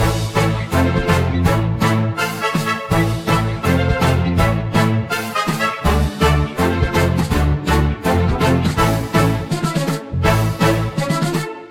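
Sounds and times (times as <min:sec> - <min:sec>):
menu music: 0:00.0 - 0:11.4.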